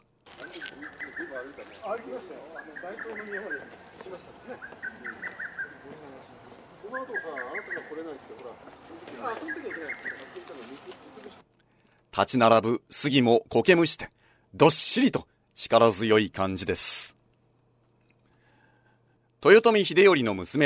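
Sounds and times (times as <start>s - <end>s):
lesser cuckoo calling: 0.3s - 11.4s
murmuring voices: 0.4s - 11.4s
speech: 1.3s - 11.4s, 12.2s - 17.2s, 19.4s - 20.6s.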